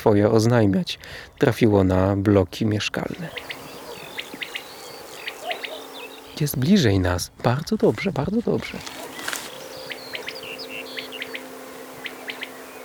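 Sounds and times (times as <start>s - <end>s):
speech: 0.0s - 3.6s, 6.4s - 9.1s
common quail calling in triple-note bursts: 3.1s - 6.6s, 8.7s - 12.8s.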